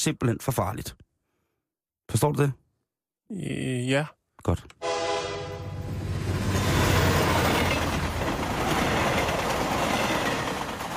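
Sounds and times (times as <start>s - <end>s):
speech: 0.0s - 1.0s, 2.1s - 2.6s, 3.3s - 4.8s
sustained horn-like tone: 4.8s - 5.9s
train rumbling on rails: 5.4s - 10.9s.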